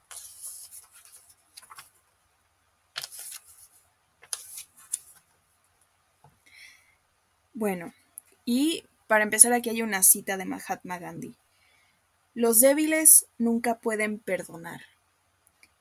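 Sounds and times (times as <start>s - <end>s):
book pages turning: 0.0s - 2.0s, 3.0s - 5.4s
speech: 7.6s - 11.4s, 12.4s - 14.9s.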